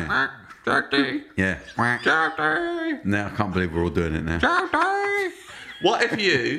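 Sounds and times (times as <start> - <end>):
people imitating a duck quacking: 0.0 - 3.4, 4.2 - 5.4
speech: 0.1 - 6.5
laughter: 4.4 - 6.5.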